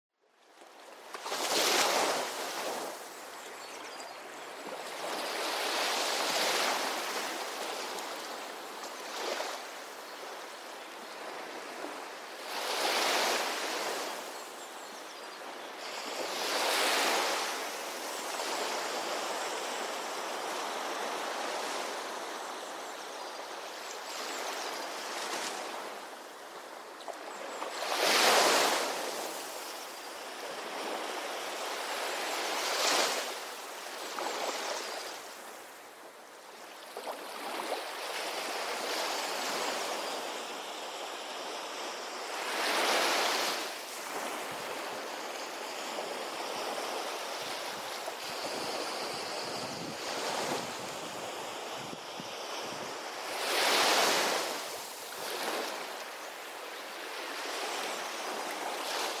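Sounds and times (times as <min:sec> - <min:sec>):
waves: 0:00.3 - 0:59.1.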